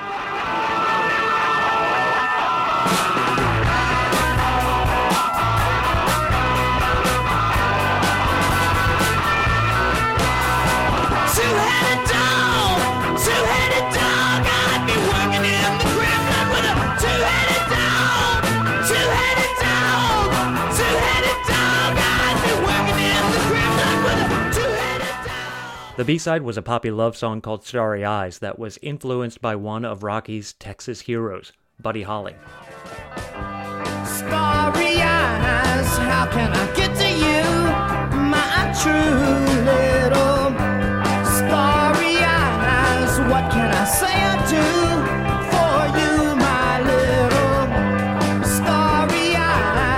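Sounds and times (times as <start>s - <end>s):
distorted guitars: 0.0s - 26.3s, 31.9s - 49.9s
screamed vocals in a heavy rock song: 11.2s - 26.0s
speech: 26.0s - 33.0s, 34.2s - 37.9s, 38.7s - 40.6s.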